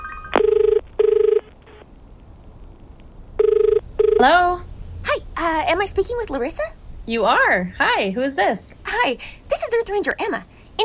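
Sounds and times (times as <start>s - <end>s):
telephone ringing while a call is placed: 0.0s - 1.8s, 3.4s - 4.3s
faint low hum of telephone line noise: 0.0s - 10.8s
speech: 4.2s - 4.7s, 5.4s - 10.8s.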